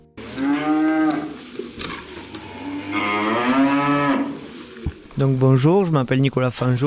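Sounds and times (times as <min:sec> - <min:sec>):
steady rustle and clatter of a barn: 0:00.0 - 0:06.6
Prim'Holstein dairy cows mooing on a dairy farm in southern Aveyron: 0:00.2 - 0:05.0
speech: 0:05.2 - 0:06.8.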